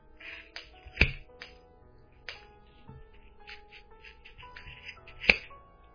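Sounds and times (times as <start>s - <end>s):
scissors snipping yarn loops of a pom-pom: 0.2s - 1.6s, 3.2s - 5.5s.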